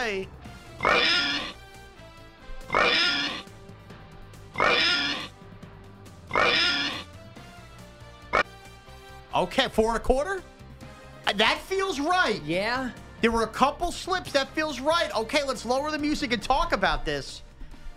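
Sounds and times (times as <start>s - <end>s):
speech: 0.0s - 1.1s, 9.4s - 10.5s, 11.3s - 17.5s
person imitating pig oinks: 0.8s - 1.6s, 2.7s - 3.4s, 4.6s - 5.3s, 6.3s - 7.1s.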